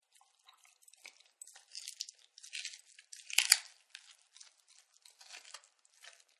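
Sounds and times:
dogs crunching bone: 0:01.5 - 0:06.3.

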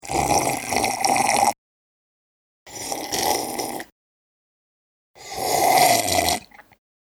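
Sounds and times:
person slurping a drink: 0:00.0 - 0:01.6, 0:02.7 - 0:03.9, 0:05.2 - 0:06.8.

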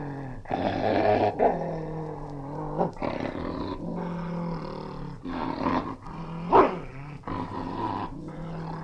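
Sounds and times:
English springer spaniel snarling angrily: 0:00.0 - 0:08.8.

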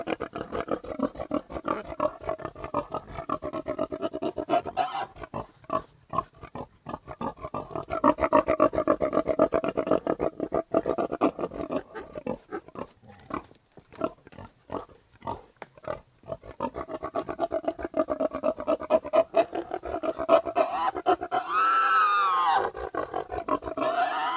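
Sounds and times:
three Tamworth pigs grunting in a yard outdoors: 0:00.0 - 0:24.3.

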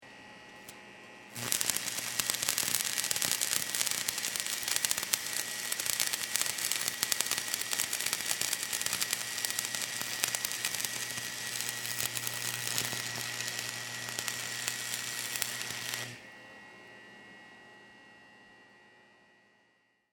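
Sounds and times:
industrial welder running with sparks: 0:00.5 - 0:16.2.

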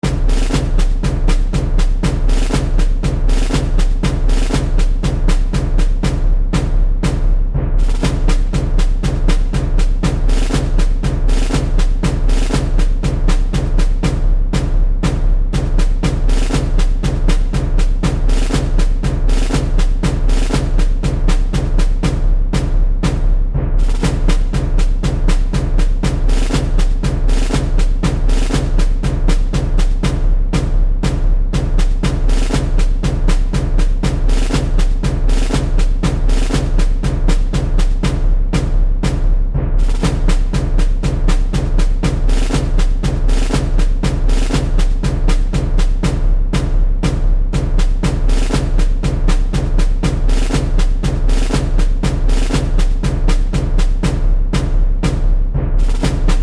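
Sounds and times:
Civil War drums loop: 0:00.0 - 0:56.4.

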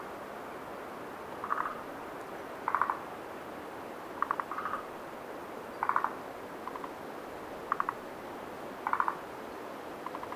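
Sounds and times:
wind: 0:00.0 - 0:10.3
frogs calling at night at a lake: 0:01.4 - 0:01.9, 0:02.6 - 0:03.1, 0:04.2 - 0:04.9, 0:05.7 - 0:07.0, 0:07.7 - 0:08.0, 0:08.8 - 0:09.3, 0:10.0 - 0:10.3.

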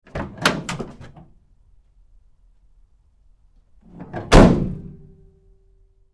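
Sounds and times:
GMC Savana truck side door opening and closing hard: 0:00.0 - 0:01.3, 0:04.0 - 0:05.0.

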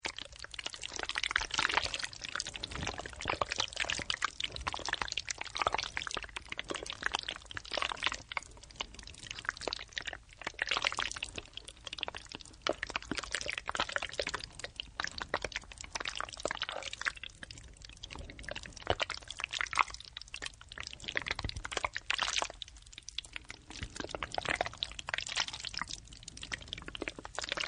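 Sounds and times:
fat or slimy stuff oozing and bubbling: 0:00.0 - 0:27.6.

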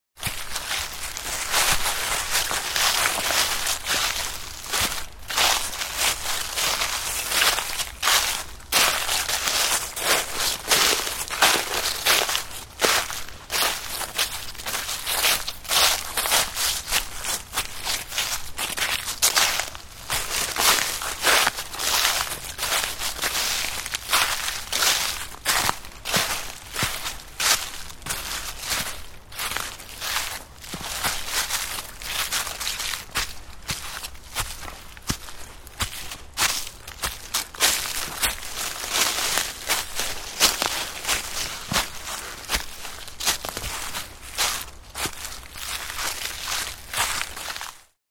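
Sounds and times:
footsteps walking through frosty ground in woodland: 0:00.2 - 0:48.0.

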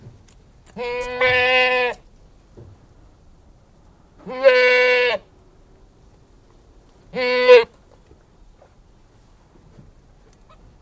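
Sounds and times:
Anglo-Nubian goat bleating outdoors: 0:00.8 - 0:02.0, 0:04.2 - 0:05.3, 0:07.1 - 0:07.7.

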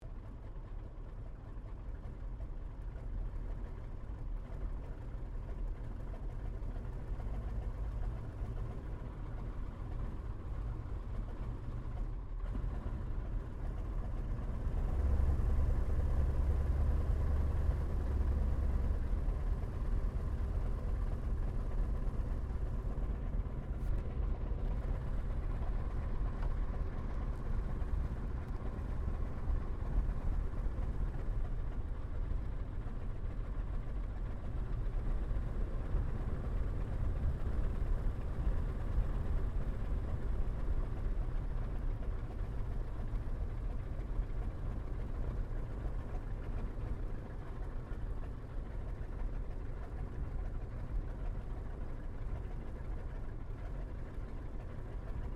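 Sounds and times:
Sopwith Pup replica aircraft taxiing and shutting down, heard from interior: 0:00.0 - 0:55.3.

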